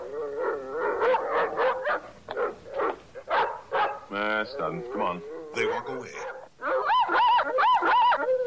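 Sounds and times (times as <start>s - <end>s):
dog barking and yipping at a tall plant: 0.4s - 4.1s, 6.2s - 8.3s
speech: 4.5s - 6.3s.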